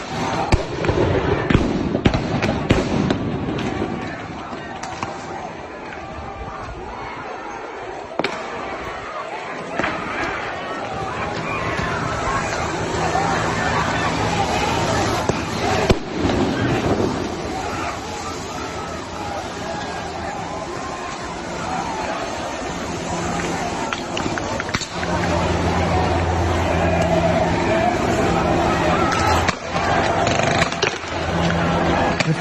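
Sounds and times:
crowd din with voices: 0:00.0 - 0:32.4
rubber bullet guns firing at protesters: 0:00.4 - 0:04.0.

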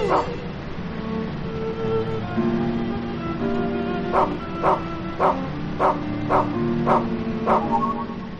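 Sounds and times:
dog barking sound effect: 0:00.0 - 0:00.4, 0:04.1 - 0:08.1
music: 0:00.0 - 0:08.3.

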